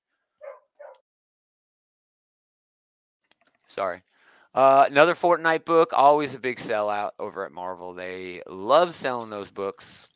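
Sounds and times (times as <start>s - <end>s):
dog barking excitedly: 0.4s - 1.0s
speech: 3.7s - 10.1s.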